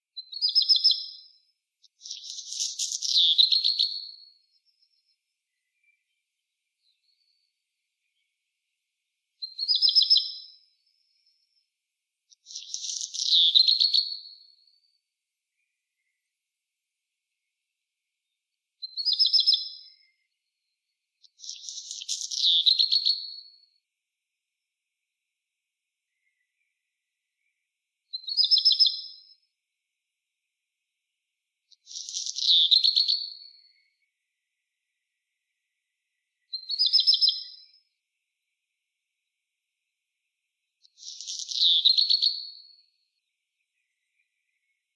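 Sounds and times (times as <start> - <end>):
black redstart Phoenicurus ochruros singing: 0.2 - 8.8, 9.4 - 11.6, 12.3 - 15.0, 18.2 - 23.7, 26.1 - 29.5, 31.8 - 34.1, 34.9 - 37.9, 40.8 - 44.9.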